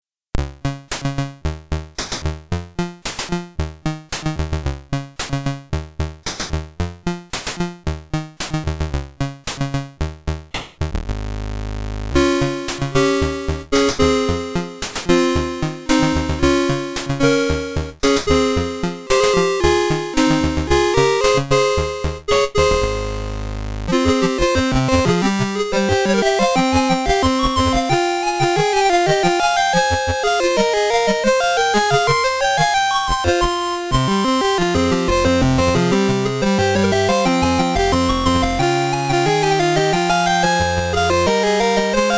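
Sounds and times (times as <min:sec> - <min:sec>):
C64 theme music: 0:00.4 - 0:42.1.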